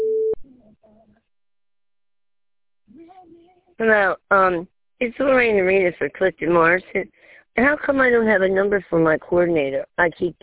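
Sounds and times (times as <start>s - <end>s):
voicemail system beep signalling start of recording: 0.0s - 0.4s
speech: 3.8s - 10.4s.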